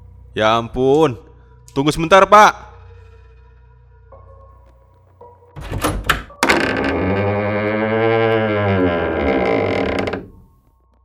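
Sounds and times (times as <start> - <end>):
speech: 0.4 - 2.6
door latch knocks: 5.6 - 7.0
door hinges creaking: 5.6 - 10.5.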